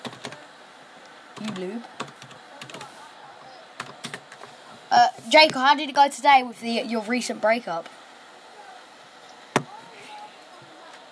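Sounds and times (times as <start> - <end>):
rapid clattering keystrokes on a computer keyboard: 0.0 - 0.4, 3.8 - 4.3
speech: 1.4 - 2.0, 5.0 - 8.0.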